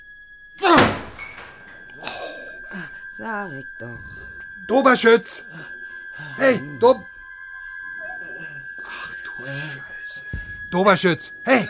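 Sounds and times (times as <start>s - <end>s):
door forced open with a hard push: 0.6s - 2.0s
rattling and scraping: 0.6s - 2.0s
speech: 3.2s - 7.1s, 9.4s - 9.9s, 10.7s - 11.6s.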